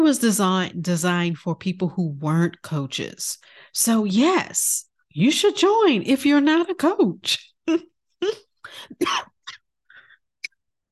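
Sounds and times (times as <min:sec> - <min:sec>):
speech: 0:00.0 - 0:09.3
person coughing: 0:08.8 - 0:09.6.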